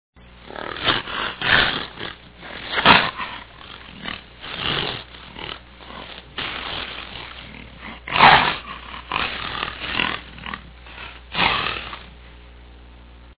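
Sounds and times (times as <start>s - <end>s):
jaguar: 0.4s - 12.2s.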